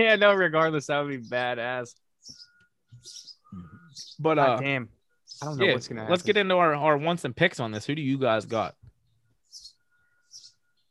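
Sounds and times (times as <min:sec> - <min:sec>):
speech: 0:00.0 - 0:08.8
birds chirping outdoors: 0:00.0 - 0:10.9.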